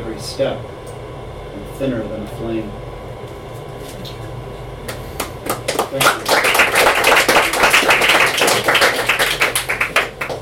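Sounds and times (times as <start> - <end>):
speech: 0.2 - 0.8, 1.6 - 2.8, 5.9 - 6.9
room full of people clapping after a poem: 4.9 - 10.4.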